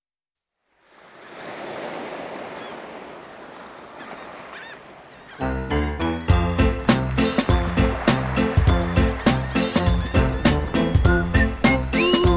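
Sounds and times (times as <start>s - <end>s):
ocean waves washing onto a beach: 0.8s - 5.3s, 7.2s - 9.9s
honking bird calls: 3.9s - 5.9s, 7.2s - 12.3s.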